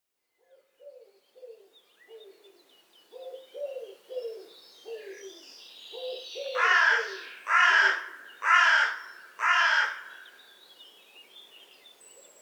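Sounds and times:
Carrion crow giving hoarse caws: 6.6s - 10.4s.

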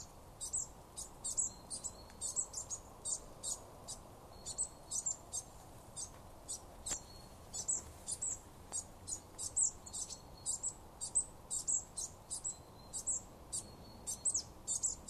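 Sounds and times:
marsh tit Poecile palustris calling: 0.0s - 15.0s.

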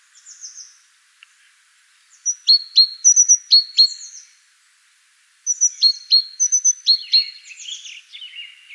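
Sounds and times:
great tit Parus major calling with sharp high chirps: 0.1s - 0.9s, 2.1s - 4.4s, 5.4s - 8.7s.

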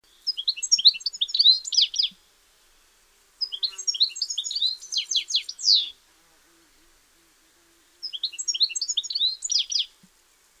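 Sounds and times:
European goldfinch twittering calls: 0.3s - 2.1s, 3.4s - 5.9s, 8.0s - 9.9s.

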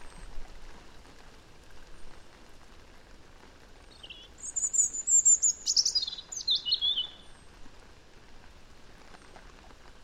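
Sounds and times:
faint background hiss: 0.0s - 10.0s
European robin Erithacus rubecula singing: 4.0s - 7.3s.

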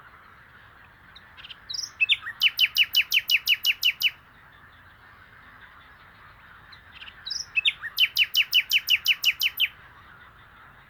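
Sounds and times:
common nightingale Luscinia megarhynchos singing: 1.2s - 4.2s, 7.0s - 9.8s.

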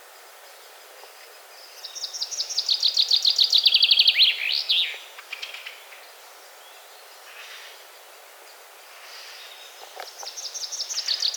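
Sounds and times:
common chaffinch Fringilla coelebs song, bright high trill with flourish: 1.6s - 7.5s, 9.3s - 11.3s.

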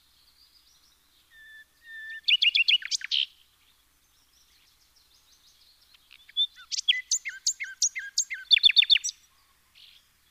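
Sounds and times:
common nightingale Luscinia megarhynchos song: 0.0s - 10.2s.

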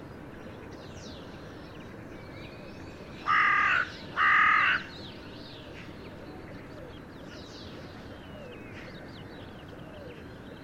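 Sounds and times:
carrion crow (Corvus corone) cawing: 3.2s - 4.9s.

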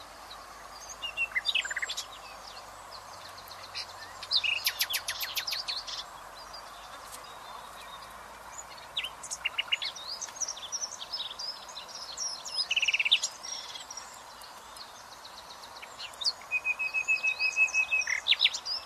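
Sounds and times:
Common nightingale Luscinia megarhynchos song: 0.0s - 18.8s
background hiss: 0.0s - 18.8s.

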